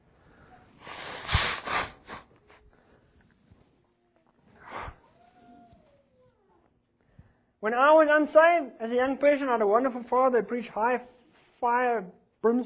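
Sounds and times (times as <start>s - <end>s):
person blowing their nose: 0.8s - 2.6s, 4.5s - 5.0s
speech: 7.6s - 12.6s.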